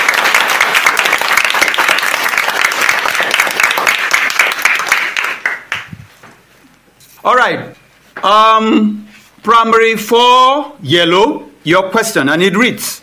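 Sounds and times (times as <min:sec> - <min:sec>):
crowd applauding: 0:00.0 - 0:06.0
speech: 0:07.3 - 0:13.0.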